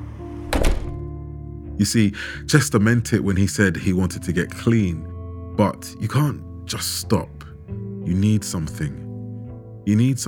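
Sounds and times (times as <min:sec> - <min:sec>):
wooden door opening with latch thunk: 0:00.4 - 0:01.0
speech: 0:01.8 - 0:09.0, 0:09.8 - 0:10.2.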